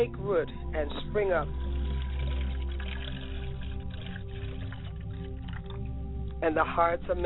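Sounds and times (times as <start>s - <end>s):
speech: 0.0s - 1.6s, 6.4s - 7.2s
low resonant hum: 0.0s - 7.2s
water poured onto ground as libation: 1.6s - 5.9s.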